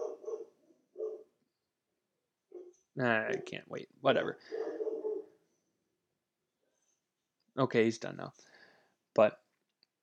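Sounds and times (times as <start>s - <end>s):
dog barking: 0.0s - 1.4s, 4.4s - 5.4s
speech: 3.0s - 4.7s, 7.6s - 8.6s, 9.2s - 9.4s.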